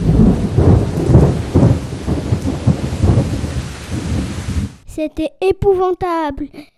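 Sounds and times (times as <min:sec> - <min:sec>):
deep rolling thunder: 0:00.0 - 0:04.8
heavy rain: 0:00.0 - 0:04.8
speech: 0:05.0 - 0:06.7.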